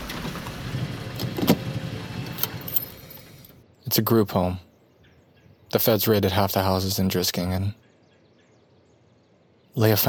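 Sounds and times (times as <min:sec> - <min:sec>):
car engine rumbling as it is brought to a stop and parked: 0:00.0 - 0:03.9
speech: 0:03.9 - 0:04.7, 0:05.7 - 0:07.8, 0:09.8 - 0:10.0.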